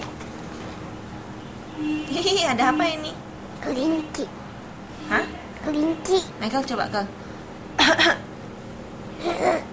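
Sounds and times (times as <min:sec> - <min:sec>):
speech: 0:01.8 - 0:04.4, 0:05.0 - 0:07.2
person coughing: 0:09.2 - 0:09.7.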